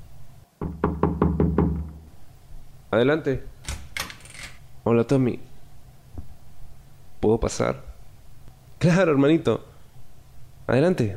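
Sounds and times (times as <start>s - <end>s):
firm knocking on a door: 0.6s - 2.1s
speech: 2.9s - 3.5s, 4.9s - 5.5s, 7.2s - 7.9s, 8.8s - 9.7s, 10.7s - 11.1s.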